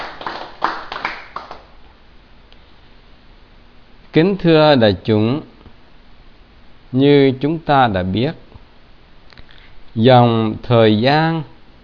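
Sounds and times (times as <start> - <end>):
crowd applauding in a reverberant room: 0.0 - 1.7
speech: 4.2 - 5.5, 6.9 - 8.4, 10.0 - 11.5.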